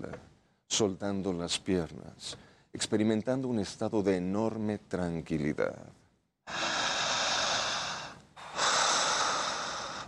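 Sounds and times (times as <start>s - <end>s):
speech: 0.0s - 6.7s
deep relaxed breath: 6.5s - 10.0s.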